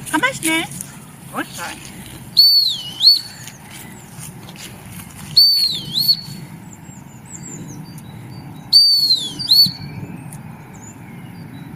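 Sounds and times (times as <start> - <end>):
low outdoor rumble: 0.0 - 11.7
speech: 0.3 - 2.0
dog recall whistle blown during training: 2.4 - 3.3, 5.4 - 6.3, 8.7 - 9.8.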